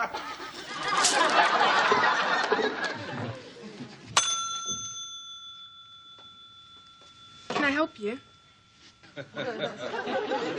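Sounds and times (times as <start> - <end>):
people laughing: 0.0 - 4.0, 9.2 - 10.5
counter bell ding at a coat check counter: 4.2 - 10.5
speech: 7.8 - 8.3, 9.2 - 10.5.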